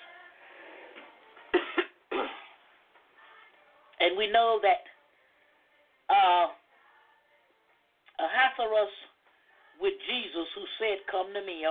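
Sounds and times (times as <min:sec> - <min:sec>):
person with a dry throat coughing: 0:01.5 - 0:02.6
speech: 0:04.0 - 0:04.9, 0:08.6 - 0:09.1, 0:09.8 - 0:11.6.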